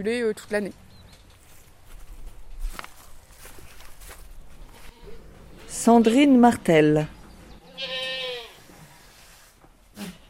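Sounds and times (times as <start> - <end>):
speech: 0.0 - 0.8, 5.8 - 7.2
shuffling: 1.2 - 6.0
single goat bleating in a farm building: 4.6 - 6.3, 7.6 - 8.7.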